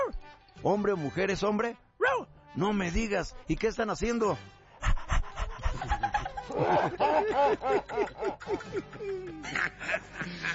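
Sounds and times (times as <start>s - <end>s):
speech: 0.6s - 1.9s, 2.6s - 4.6s, 6.5s - 10.5s
small dog panting rapidly and excitedly: 4.8s - 6.0s
laughter: 4.8s - 10.5s.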